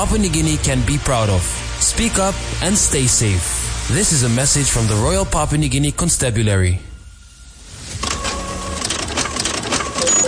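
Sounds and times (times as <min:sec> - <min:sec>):
speech: 0:00.0 - 0:06.9
office printer whirring and clattering: 0:08.0 - 0:10.2.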